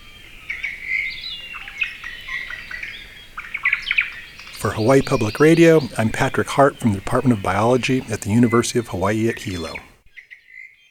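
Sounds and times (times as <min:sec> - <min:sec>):
small white-eye singing: 0:04.3 - 0:10.0
speech: 0:04.6 - 0:09.9.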